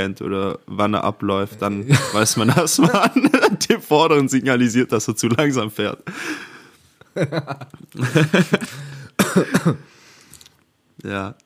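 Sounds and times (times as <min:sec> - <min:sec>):
speech: 0:00.0 - 0:06.5, 0:07.2 - 0:10.0, 0:11.0 - 0:11.4
laughter: 0:01.9 - 0:03.8, 0:07.1 - 0:08.9
voiced throaty coughs: 0:08.6 - 0:09.9.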